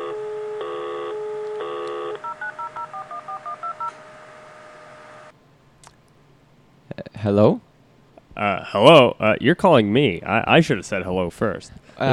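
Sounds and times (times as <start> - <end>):
telephone keypad tones as a phone is dialed: 0.0 - 4.0
steady telephone tone: 0.0 - 5.3
speech: 7.2 - 7.7, 8.4 - 12.1.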